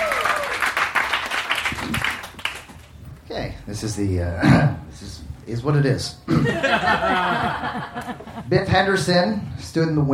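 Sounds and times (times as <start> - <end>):
live audience applause: 0.0 - 2.9
speech: 3.4 - 10.1
laughter: 6.3 - 8.6.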